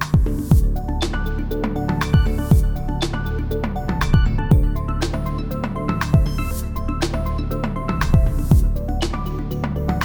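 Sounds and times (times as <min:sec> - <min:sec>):
platformer game music loop: 0:00.1 - 0:10.0.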